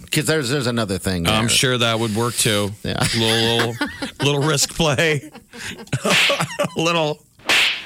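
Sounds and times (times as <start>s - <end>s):
speech: 0.2s - 7.3s
person vocally imitating a slap: 6.1s - 6.5s, 7.4s - 7.8s.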